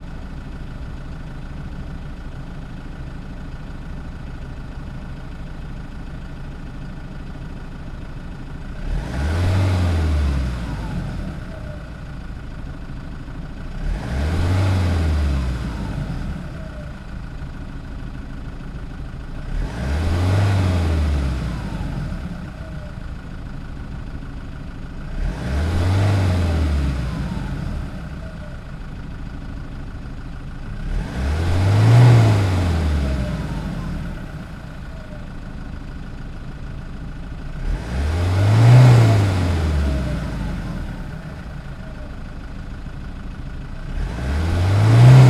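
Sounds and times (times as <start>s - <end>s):
Land Rover Defender engine idling at medium revs: 0.0s - 45.2s.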